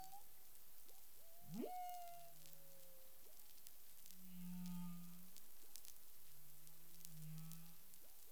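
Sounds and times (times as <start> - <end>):
humpback whale low humming moans: 0.0 - 5.9, 6.6 - 8.2
background hiss: 0.0 - 8.3
humpback whale rising whoop: 1.2 - 3.2.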